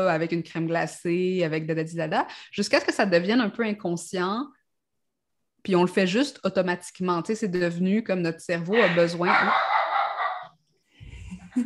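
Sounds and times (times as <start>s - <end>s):
speech: 0.0s - 4.6s, 5.6s - 9.8s
dog barking and yipping: 8.7s - 10.6s.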